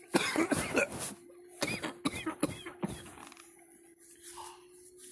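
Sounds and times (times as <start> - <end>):
person coughing after coffee went down the wrong way: 0.0 - 1.0, 1.6 - 2.9.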